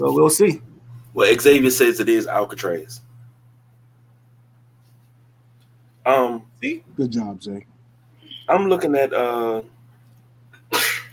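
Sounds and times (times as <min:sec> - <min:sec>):
speech: 0:00.0 - 0:03.0, 0:06.0 - 0:07.7, 0:08.5 - 0:09.8
steady low hum: 0:00.0 - 0:11.1
person sneezing: 0:10.7 - 0:11.1.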